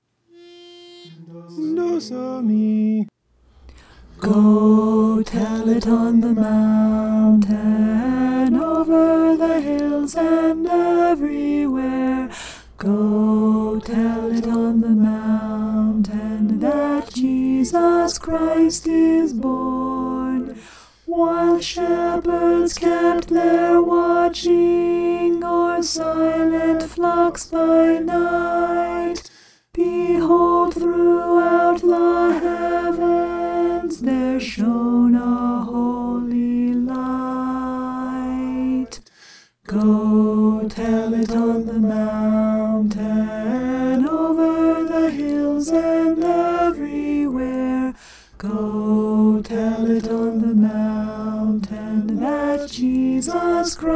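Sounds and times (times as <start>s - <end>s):
alto voice singing a carol: 0.3s - 39.0s, 39.7s - 53.9s.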